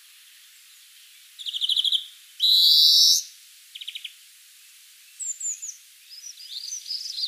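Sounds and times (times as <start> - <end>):
European greenfinch Chloris chloris soft twittering chirps: 1.4 - 4.1, 5.2 - 7.2.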